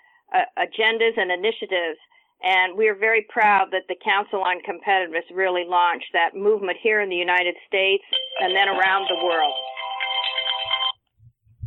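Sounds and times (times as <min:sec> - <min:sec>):
speech: 0:00.3 - 0:09.8
electronic phone ringtone melody: 0:08.1 - 0:11.0
faint low thumps: 0:11.2 - 0:11.6.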